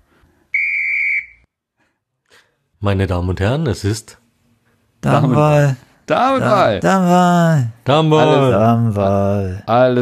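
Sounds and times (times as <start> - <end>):
faint noise: 0.0 - 10.0
referee whistle blown for kickoff: 0.5 - 1.5
speech: 2.8 - 4.2, 5.1 - 10.0.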